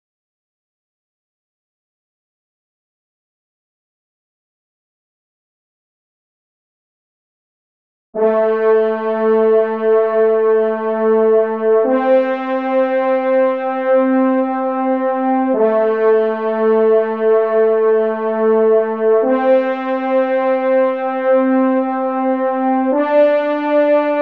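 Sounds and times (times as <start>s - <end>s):
horn in E-flat playing: 8.2s - 24.2s.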